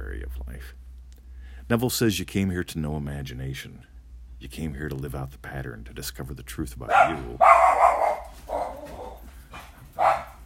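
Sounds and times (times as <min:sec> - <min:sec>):
speech: 0:00.6 - 0:00.9, 0:01.7 - 0:08.0
pet dog barking: 0:06.9 - 0:10.4.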